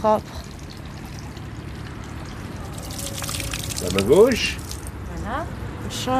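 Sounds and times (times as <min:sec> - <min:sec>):
speech: 0:00.0 - 0:00.4, 0:03.8 - 0:04.6, 0:05.2 - 0:06.1
water poured from a small wooden ladle over the left hand: 0:00.4 - 0:04.9.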